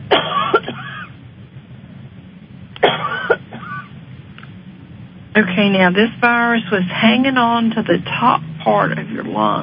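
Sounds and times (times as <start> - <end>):
quiet hum: 0.0 - 9.6
person coughing: 0.1 - 1.1, 2.8 - 3.9
speech: 5.4 - 9.6.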